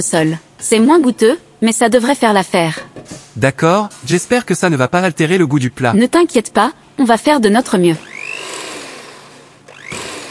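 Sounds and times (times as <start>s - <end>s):
speech: 0.0s - 2.8s, 3.4s - 8.1s
faulty kitchen blender motor whining and sputtering: 7.9s - 10.2s.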